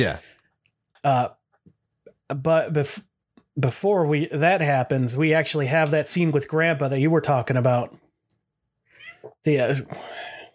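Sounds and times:
speech: 0:00.0 - 0:00.3, 0:01.0 - 0:01.4, 0:02.3 - 0:08.0, 0:09.4 - 0:10.3
cat meowing: 0:09.0 - 0:09.4.

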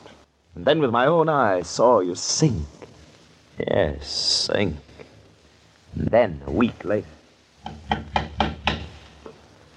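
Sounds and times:
speech: 0:00.6 - 0:02.8, 0:03.6 - 0:04.9, 0:06.0 - 0:08.2
knocking on a wooden door: 0:07.6 - 0:08.9.

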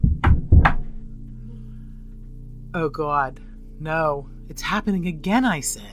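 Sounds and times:
heavy knocks on a door: 0:00.0 - 0:01.0
speech: 0:02.8 - 0:05.9.

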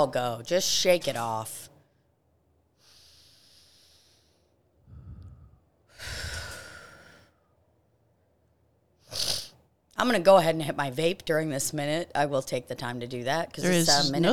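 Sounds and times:
speech: 0:00.0 - 0:01.7, 0:10.0 - 0:14.3
slow deep breathing with snorting sighing edge during relaxation: 0:02.8 - 0:07.6.

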